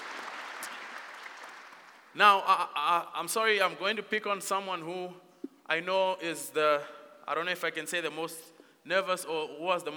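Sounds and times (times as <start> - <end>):
audience clapping for panelists: 0.0 - 2.2
speech: 2.2 - 9.9.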